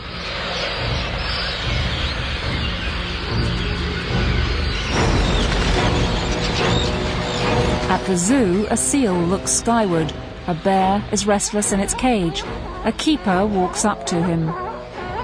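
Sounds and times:
birds chirping: 0.0s - 15.2s
thousands of birds' wings fluttering overhead: 0.2s - 9.4s
speech: 8.0s - 14.6s.

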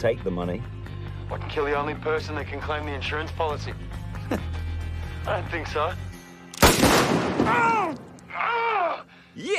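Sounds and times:
speech: 0.0s - 4.6s, 5.2s - 6.1s, 7.1s - 8.0s, 9.4s - 9.5s
sharp gunshot in a radio drama: 6.6s - 7.8s
man crying out in pain after being hit in the arm: 7.5s - 9.5s.

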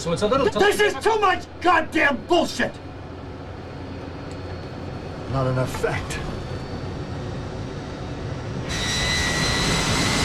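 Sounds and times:
speech: 0.0s - 2.9s, 5.3s - 6.3s
airplane taking off along a runway: 4.6s - 10.2s
high whining jet tone of airplane taking off: 5.1s - 10.2s.

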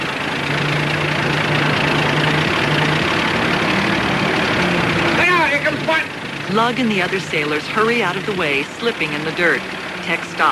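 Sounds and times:
heavy bulldozer engine labouring crawling up a dirt bank: 0.0s - 10.5s
speech: 6.5s - 10.5s.

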